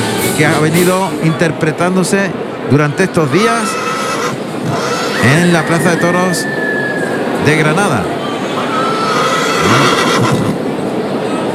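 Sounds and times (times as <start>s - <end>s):
outdoor crowd noise in a bullring: 0.0s - 11.5s
speech: 0.4s - 3.8s, 4.6s - 6.7s, 7.4s - 8.2s, 9.6s - 10.6s
horse whinnying in a bullring: 3.2s - 7.1s, 8.5s - 10.6s.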